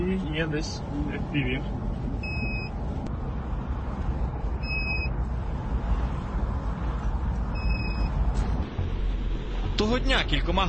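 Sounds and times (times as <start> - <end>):
low rumble of city street traffic heard while driving through the city: 0.0 - 10.6
speech: 0.4 - 2.2, 9.8 - 10.6
short two-tone electronic beeps: 2.2 - 2.7, 4.6 - 5.1, 7.6 - 8.2.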